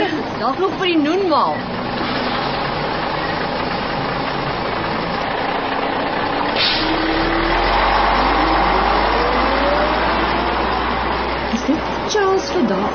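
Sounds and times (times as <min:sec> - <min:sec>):
heavy bus engine rumbling and idling: 0:00.0 - 0:12.9
speech: 0:00.4 - 0:02.2, 0:11.7 - 0:12.9
bus air brake hiss: 0:06.6 - 0:07.0.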